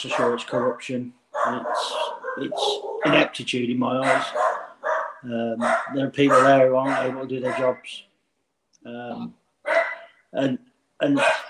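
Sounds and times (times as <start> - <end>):
speech: 0.0 - 4.5, 5.2 - 8.1, 8.8 - 9.4, 10.3 - 11.4
dogs barking at home: 0.0 - 7.9, 9.7 - 10.2, 11.0 - 11.4.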